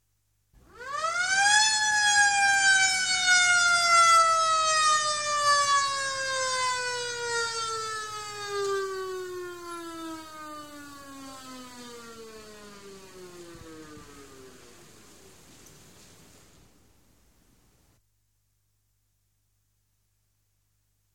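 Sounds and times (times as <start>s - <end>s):
rescue vehicle siren: 0.6s - 15.5s.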